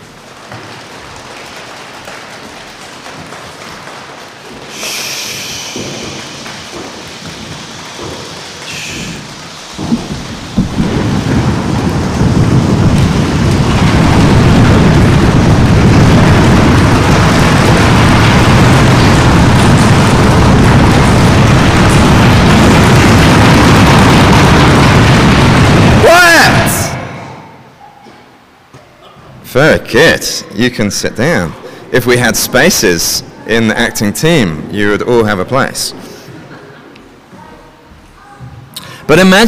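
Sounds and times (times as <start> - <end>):
crowd drumming and pounding on tables to mimic a thunderstorm: 0.0 - 27.8
speech: 29.6 - 36.1, 39.1 - 39.4.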